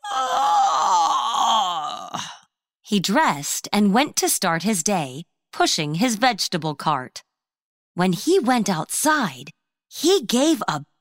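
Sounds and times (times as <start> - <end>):
voice acting out an old man's big stretching yawn: 0.0 - 2.5
speech: 2.9 - 7.3, 8.0 - 10.9.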